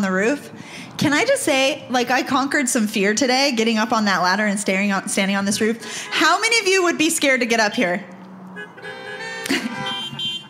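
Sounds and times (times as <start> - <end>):
speech: 0.0 - 8.2, 9.5 - 9.9
car horns honking: 5.8 - 7.0, 8.3 - 10.4.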